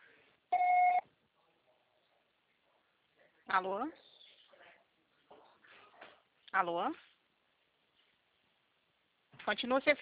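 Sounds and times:
voicemail beep before recording a message: 0.5s - 1.0s
speech: 3.5s - 4.1s, 6.6s - 7.1s, 9.5s - 10.0s.

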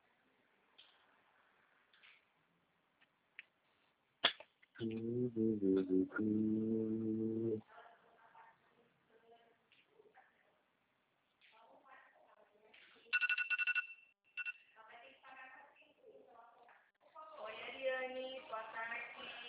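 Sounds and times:
people talking: 4.8s - 10.6s, 11.5s - 13.2s, 14.8s - 19.4s
watch alarm shrill electronic beeps: 13.1s - 14.7s.

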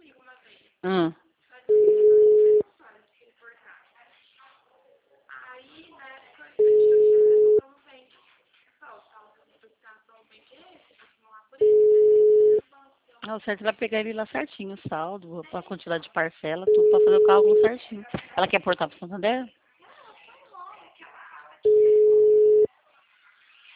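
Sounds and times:
speech: 0.8s - 1.2s, 13.3s - 19.6s
busy-line telephone tones on a call to a bank's toll-free number: 1.7s - 2.6s, 6.6s - 7.6s, 11.6s - 12.6s, 16.7s - 17.8s, 21.7s - 22.7s.

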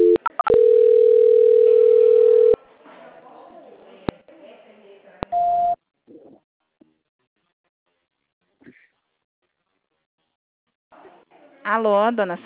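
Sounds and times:
steady telephone tone during a call transfer: 0.0s - 2.6s
telephone beeps during a call transfer: 0.0s - 2.6s, 5.3s - 5.8s
speech: 11.7s - 12.4s.

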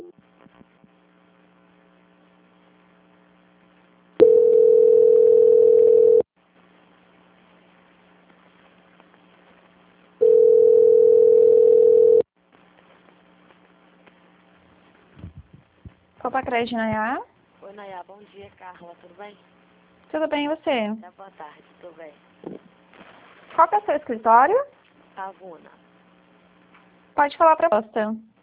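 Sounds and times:
telephone line tones during a call transfer: 4.2s - 6.2s, 10.2s - 12.2s
speech: 16.4s - 22.6s, 23.6s - 25.8s, 27.2s - 28.3s.

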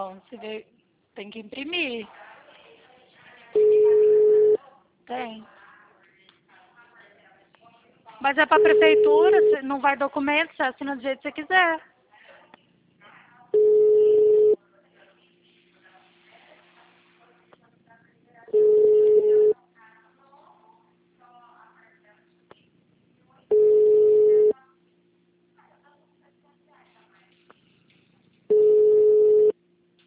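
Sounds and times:
speech: 0.0s - 2.3s, 5.1s - 5.6s, 8.2s - 11.9s
ringback tone of an unanswered telephone call: 3.6s - 4.6s, 13.6s - 14.6s, 18.6s - 19.5s, 23.5s - 24.5s, 28.5s - 29.5s.

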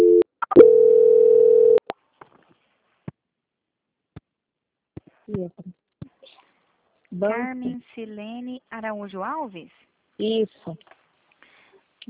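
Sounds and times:
telephone tone during a call transfer: 0.0s - 1.8s
speech: 5.3s - 5.8s, 7.1s - 11.0s.

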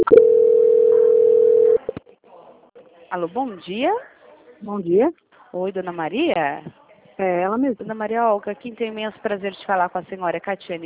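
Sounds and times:
telephone call-transfer tone, long steady beep: 0.0s - 1.9s
speech: 3.1s - 10.8s.

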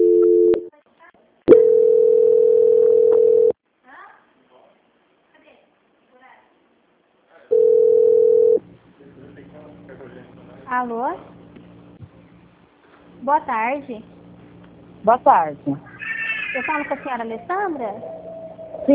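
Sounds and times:
telephone line tone during call transfer to a bank's quality-control line: 0.0s - 0.7s, 1.5s - 3.6s, 7.5s - 8.6s
speech: 10.8s - 11.3s, 13.3s - 14.2s, 15.0s - 15.9s, 16.6s - 18.2s.

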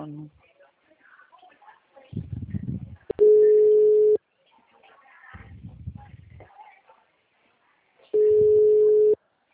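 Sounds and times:
ringback tone of an outgoing telephone call: 3.2s - 4.2s, 8.2s - 9.2s.

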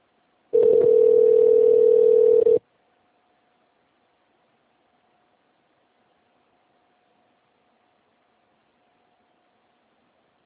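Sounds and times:
telephone line tone while a call is being transferred: 0.6s - 2.6s.

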